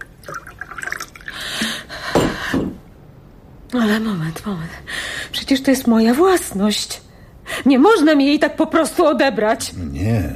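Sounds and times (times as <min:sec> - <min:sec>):
water pouring into a glass: 0:00.0 - 0:01.6
speech: 0:03.7 - 0:07.0, 0:07.6 - 0:10.3.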